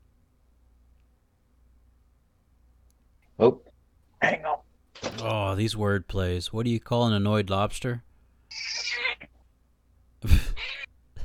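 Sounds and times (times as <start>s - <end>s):
speech: 3.4s - 4.4s, 5.2s - 8.8s
cat meowing: 8.5s - 9.4s, 10.5s - 10.9s.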